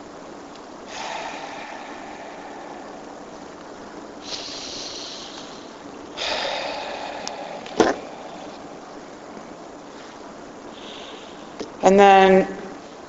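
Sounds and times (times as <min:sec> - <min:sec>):
several people breathing slowly in and out: 0:00.9 - 0:08.8, 0:09.8 - 0:11.6
speech: 0:11.9 - 0:12.6.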